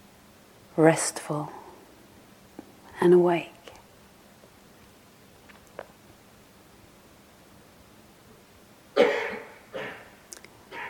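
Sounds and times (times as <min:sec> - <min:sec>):
speech: 0:00.8 - 0:01.6, 0:03.0 - 0:03.6
person coughing: 0:09.0 - 0:10.8.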